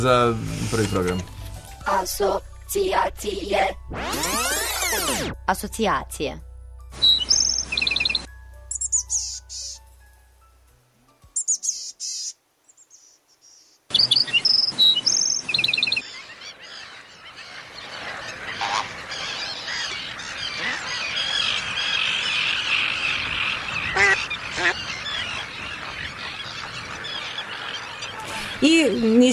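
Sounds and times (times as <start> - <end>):
speech: 0.0 - 4.4, 5.1 - 7.0
birds chirping and calling in a dense chorus: 7.0 - 9.8, 11.4 - 29.3.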